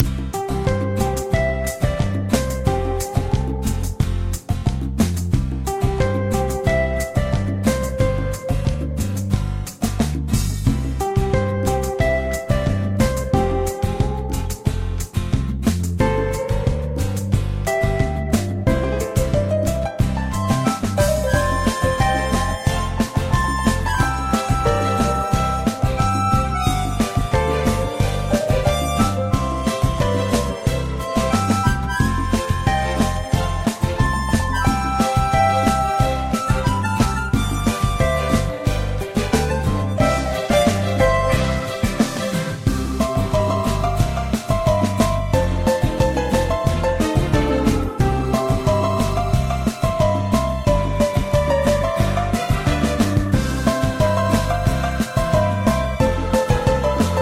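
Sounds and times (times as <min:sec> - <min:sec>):
background music: 0:00.0 - 0:57.2.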